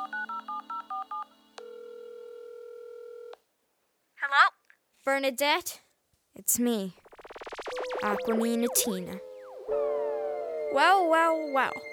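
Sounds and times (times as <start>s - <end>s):
long steady telephone call tone: 0.0s - 3.4s, 7.0s - 11.9s
speech: 5.0s - 5.8s, 6.4s - 7.0s, 8.0s - 9.3s, 10.7s - 11.9s.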